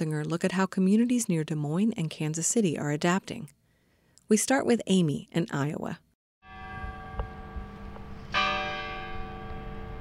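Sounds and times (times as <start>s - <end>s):
speech: 0.0s - 3.6s, 4.3s - 6.0s
large courthouse clock bell chiming the hour: 6.4s - 9.9s.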